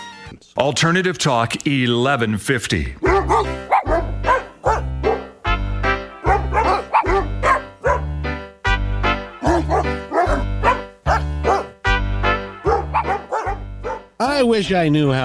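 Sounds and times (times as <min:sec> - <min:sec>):
speech: 0:00.6 - 0:04.0, 0:14.3 - 0:15.2
dog barks edited into a song: 0:03.0 - 0:05.3, 0:06.2 - 0:08.1, 0:09.4 - 0:11.8, 0:12.5 - 0:14.1
deep repeating bass line: 0:03.1 - 0:13.0.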